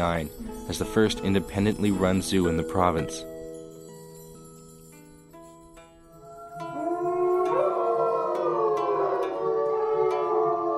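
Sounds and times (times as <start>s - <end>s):
speech: 0.0s - 3.3s
wolves howling in chorus: 6.2s - 10.7s.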